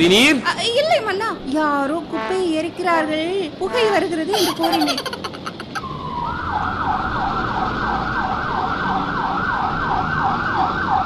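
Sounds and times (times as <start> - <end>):
speech: 0.0 - 5.2
low rumble of road traffic: 0.0 - 11.0
laughter: 4.3 - 5.8
ambulance siren wailing: 5.8 - 11.0.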